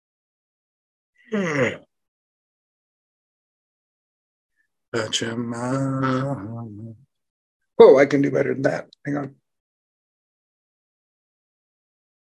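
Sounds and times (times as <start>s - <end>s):
person yawning loudly: 1.3s - 1.8s
speech: 1.3s - 1.9s, 4.9s - 7.1s, 7.8s - 9.4s.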